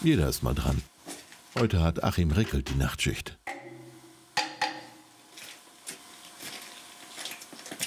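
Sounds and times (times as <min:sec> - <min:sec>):
speech: 0:00.0 - 0:00.9, 0:01.5 - 0:03.5
hammer tapping on screw connections of a fired-up locomotive: 0:03.5 - 0:05.0.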